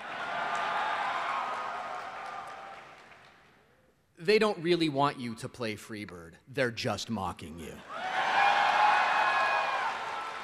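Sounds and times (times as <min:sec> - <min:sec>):
audience cheering and whooping: 0:00.0 - 0:03.0, 0:07.9 - 0:10.4
speech: 0:04.2 - 0:08.0.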